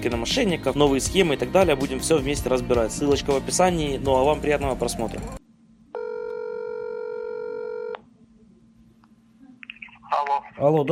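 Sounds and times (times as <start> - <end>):
speech: 0.0 - 5.4, 10.6 - 10.9
telephone ringback tone on an outgoing call: 6.0 - 8.0.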